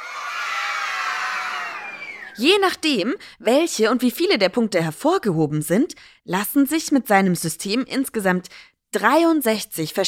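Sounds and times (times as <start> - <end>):
15-year-old boy cheering with joy in a workshop: 0.0 - 2.4
speech: 2.4 - 10.0.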